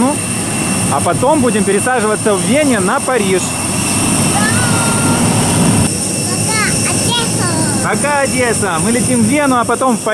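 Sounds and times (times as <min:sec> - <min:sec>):
jet airliner high turbine whine: 0:00.0 - 0:10.1
jet airliner idling on the apron at Odesa, engine roar: 0:00.0 - 0:10.1
speech: 0:01.0 - 0:03.7, 0:07.9 - 0:10.1
short rising squeals: 0:03.8 - 0:05.9.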